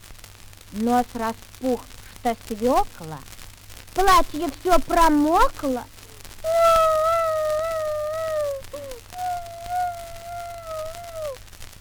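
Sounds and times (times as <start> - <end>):
speech: 0.7 - 3.4, 4.0 - 6.0
girl wailing and crying loudly: 6.0 - 11.4.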